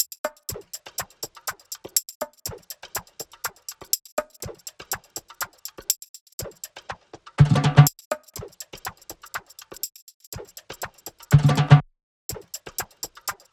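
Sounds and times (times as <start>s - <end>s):
percussion loop 122: 0.0s - 13.5s.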